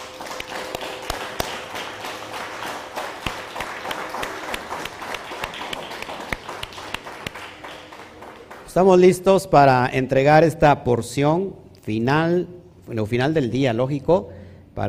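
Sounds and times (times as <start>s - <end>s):
crowd applauding: 0.0s - 9.3s
speech: 8.8s - 14.8s.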